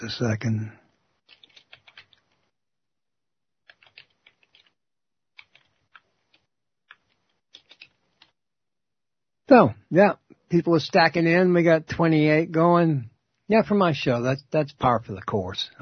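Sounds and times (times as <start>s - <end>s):
speech: 0.0s - 0.8s, 9.5s - 15.7s
typing on a computer keyboard: 1.2s - 2.4s, 3.6s - 4.8s, 5.4s - 8.3s.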